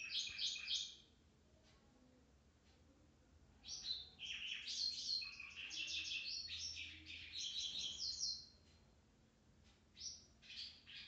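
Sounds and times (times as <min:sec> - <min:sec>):
white-browed wagtail Motacilla maderaspatensis singing: 0:00.0 - 0:01.0, 0:03.6 - 0:08.6.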